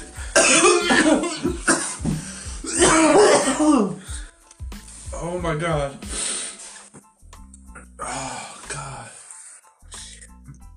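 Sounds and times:
harsh coughing fits: 0.2 - 4.0
speech: 5.2 - 6.2.

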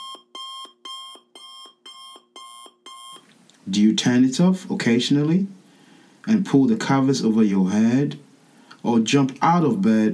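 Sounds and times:
alarm clock electronic beeps: 0.0 - 3.2
speech: 3.7 - 5.6, 6.3 - 8.2, 8.8 - 10.1.

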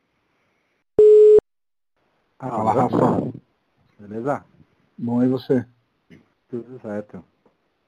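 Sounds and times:
short electronic beep of a telephone ringing tone: 1.0 - 1.4
speech: 2.4 - 3.4, 4.0 - 7.3.

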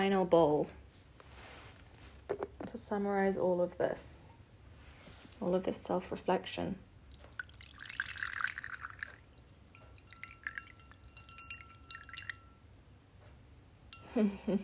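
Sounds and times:
speech: 0.0 - 0.8, 2.3 - 4.2, 5.4 - 6.9, 14.2 - 14.6
liquid poured into a bowl: 6.8 - 12.6
quiet clinks: 9.7 - 12.7.

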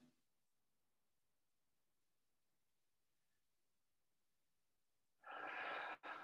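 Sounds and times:
loud airy deep breath drawn and released: 5.2 - 6.2.

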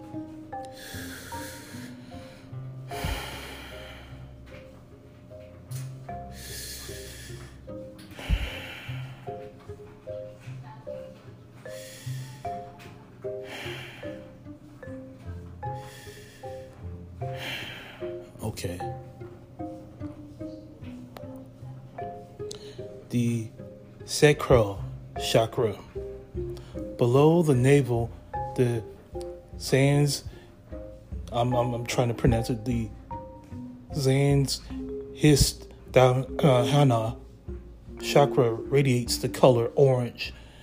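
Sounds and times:
soft sustained musical drone: 0.0 - 40.6
slow deep breathing exercise: 0.6 - 4.7, 6.2 - 9.6, 11.6 - 18.4, 22.4 - 23.1, 25.9 - 27.0, 40.3 - 40.6
speech: 24.2 - 25.8, 27.0 - 29.0, 29.6 - 30.3, 31.4 - 33.0, 34.0 - 37.2, 38.0 - 40.4.

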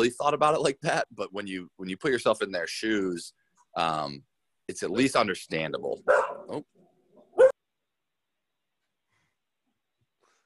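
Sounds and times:
speech: 0.0 - 6.8
dog barking: 6.1 - 6.6, 7.3 - 7.6.

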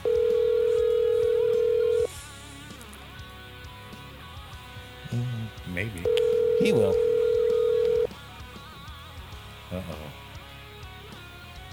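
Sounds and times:
telephone ringback tone on an outgoing call: 0.0 - 2.1, 6.0 - 8.1
speech: 5.1 - 7.1.

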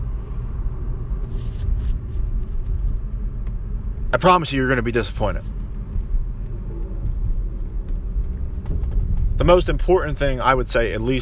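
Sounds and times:
car being driven with steady low engine and road rumble: 0.0 - 11.1
speech: 4.1 - 5.6, 9.4 - 11.1.

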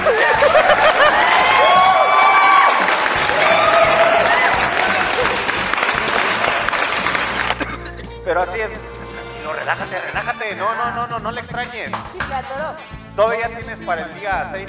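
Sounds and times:
crowd applauding: 0.0 - 7.8
crowd laughing: 0.0 - 8.0, 9.0 - 11.0
speech: 9.7 - 14.6.

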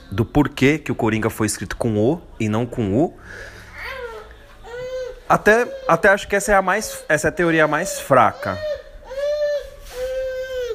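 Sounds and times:
speech: 0.1 - 3.6, 5.3 - 8.8
baby crying: 3.7 - 10.7.

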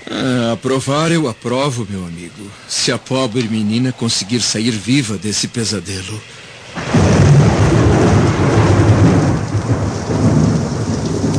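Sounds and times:
heavy rain: 0.0 - 11.3
speech: 0.1 - 6.4
deep rumbling thunder: 6.7 - 11.3.

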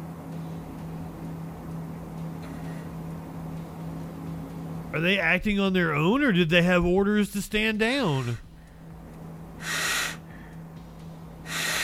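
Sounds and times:
steady low hum: 0.0 - 11.8
speech: 4.9 - 8.4
person snorting cocaine through the nose: 9.6 - 10.2, 11.5 - 11.8.

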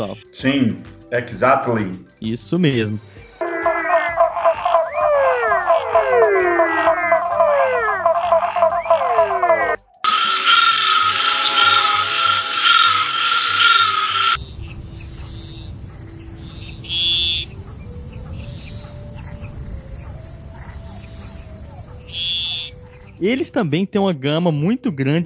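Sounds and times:
speech: 0.0 - 3.2, 23.2 - 25.2
frog rapid repeated chirping: 3.4 - 23.2
toad lower droning call: 3.4 - 23.2.

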